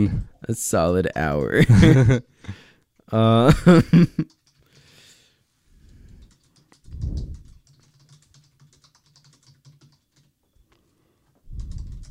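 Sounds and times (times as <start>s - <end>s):
speech: 0.0s - 4.4s
typing on a computer keyboard: 4.1s - 5.0s, 5.8s - 10.4s, 11.5s - 12.1s.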